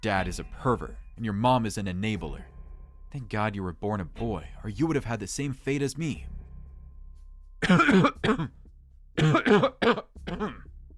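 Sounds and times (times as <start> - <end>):
speech: 0.0 - 2.5, 3.1 - 6.3, 7.6 - 8.6, 9.2 - 10.7
person coughing and clearing their throat: 7.6 - 8.6, 9.2 - 10.7.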